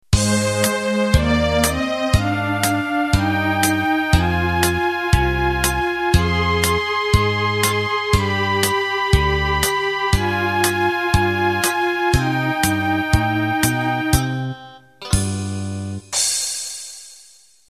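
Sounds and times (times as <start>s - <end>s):
Broadway intro music: 0.2s - 16.0s.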